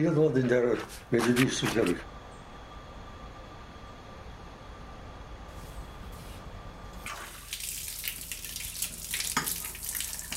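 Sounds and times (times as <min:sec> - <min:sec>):
speech: 0:00.0 - 0:02.2
low rumbling hum: 0:00.0 - 0:08.4
water running from a tap: 0:07.0 - 0:10.3.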